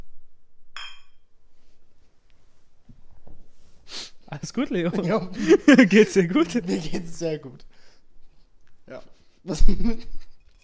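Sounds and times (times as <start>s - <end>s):
glasses clinking in a toast: 0.8s - 1.3s
laughter: 4.3s - 7.6s
speech: 4.3s - 7.7s, 8.9s - 10.2s.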